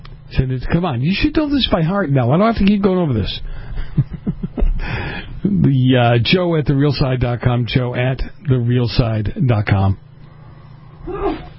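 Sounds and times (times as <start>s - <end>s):
low steady hum: 0.0s - 11.5s
speech: 0.3s - 10.0s
laughter: 3.6s - 4.9s
woman sneezing in a studio: 11.1s - 11.5s.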